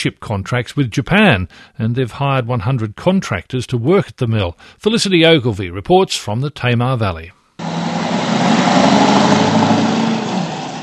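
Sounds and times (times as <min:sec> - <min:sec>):
speech: 0:00.0 - 0:07.4
log truck engine running with low rumble and droning hum: 0:07.6 - 0:10.8.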